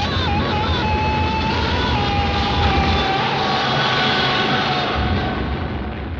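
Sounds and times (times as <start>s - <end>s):
film scream: 0.0s - 6.0s.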